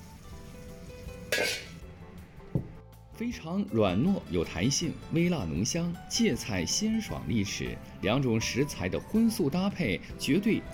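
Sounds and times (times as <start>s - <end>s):
loud sizzling in a wok over high heat: 0.0s - 1.9s
metallic clank of a utensil against a wok: 1.2s - 1.8s
speech: 3.2s - 10.7s.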